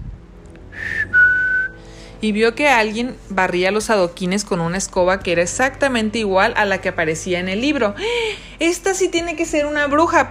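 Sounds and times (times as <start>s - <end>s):
single clear whistle: 0.8s - 1.8s
speech: 2.2s - 10.2s.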